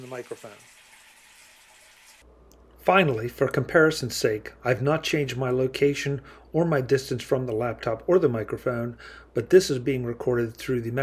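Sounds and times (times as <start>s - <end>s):
tap water running into a sink: 0.0s - 2.2s
speech: 0.1s - 0.8s, 2.2s - 11.0s.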